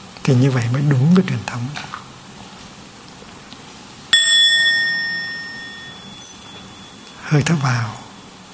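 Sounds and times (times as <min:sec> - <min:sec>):
speech: 0:00.2 - 0:02.0, 0:07.3 - 0:08.0
meditation bell struck during mindful breathing practice: 0:04.1 - 0:08.5.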